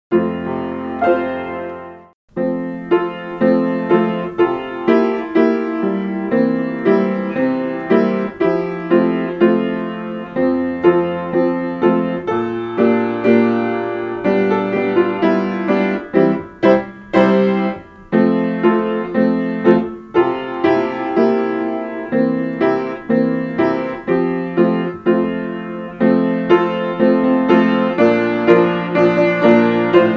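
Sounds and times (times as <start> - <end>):
religious children's song with piano: 0.1 - 30.1.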